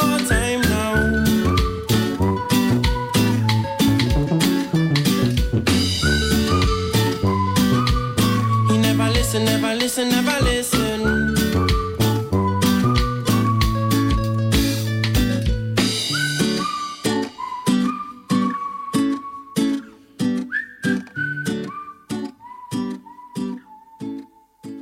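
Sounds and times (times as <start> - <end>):
song with a steady punchy beat and bass: 0.0 - 17.8
whistled melody: 0.0 - 24.8.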